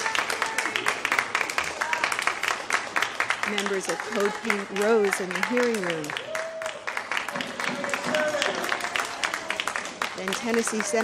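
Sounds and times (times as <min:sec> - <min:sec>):
applause from anti-war demonstrators in Senate hearing room: 0:00.0 - 0:11.0
speech: 0:03.5 - 0:06.3, 0:10.2 - 0:11.0.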